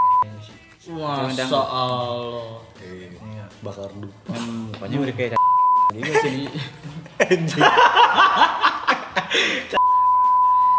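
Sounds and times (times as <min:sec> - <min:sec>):
loud steady censor bleep tone: 0:00.0 - 0:00.2, 0:05.4 - 0:05.9, 0:09.8 - 0:10.7
speech: 0:00.8 - 0:03.0, 0:03.6 - 0:08.6, 0:09.3 - 0:09.9
chuckling laughter: 0:06.0 - 0:09.8.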